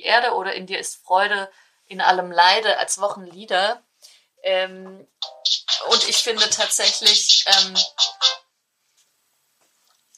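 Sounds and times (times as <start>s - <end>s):
speech: 0.0s - 8.4s
mobile phone ringtone electronic chirps: 5.2s - 8.4s.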